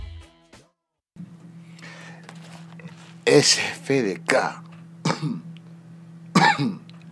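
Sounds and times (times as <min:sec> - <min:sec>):
speech: 0:03.3 - 0:05.5
person coughing: 0:05.0 - 0:05.5, 0:06.3 - 0:06.9.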